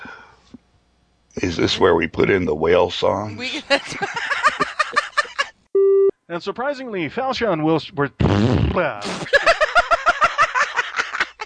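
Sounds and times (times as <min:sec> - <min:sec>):
speech: 0:01.4 - 0:04.3, 0:06.3 - 0:09.6
rhythmic laughter-like bursts: 0:03.6 - 0:05.5, 0:09.0 - 0:11.4
comic fart sound effect: 0:08.2 - 0:09.4.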